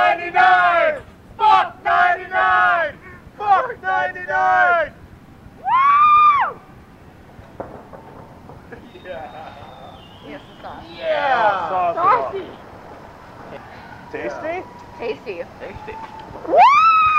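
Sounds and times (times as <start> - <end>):
group of people yelling and whooping in celebration in the street: 0.0 - 5.0, 5.6 - 6.7, 8.8 - 12.6, 13.4 - 17.1.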